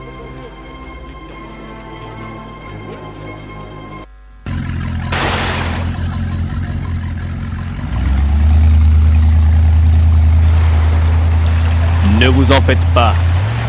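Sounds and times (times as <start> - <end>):
motor vehicle engine revving as it accelerates away: 4.4 - 13.6
speech: 12.3 - 13.3.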